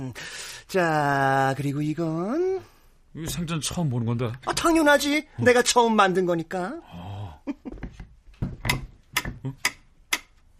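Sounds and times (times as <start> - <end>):
speech: 0.0 - 7.8
mechanical metronome ticking at a moderate tempo: 8.7 - 10.5.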